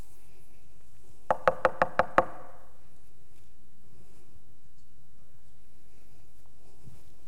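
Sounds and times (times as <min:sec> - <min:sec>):
sharp knocks on a door: 0:01.3 - 0:02.4.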